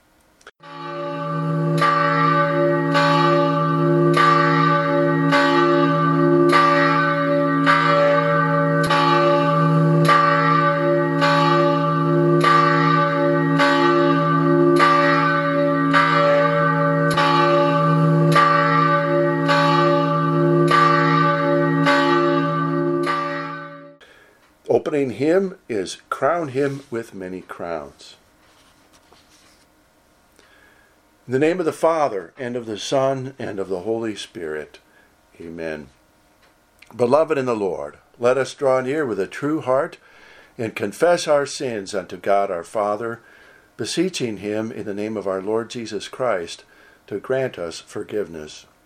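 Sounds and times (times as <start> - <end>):
church bell ringing during Easter Sunday church service: 0.6 - 24.0
speech: 25.8 - 28.2, 31.3 - 34.8, 35.4 - 36.0, 36.9 - 40.0, 40.6 - 48.7.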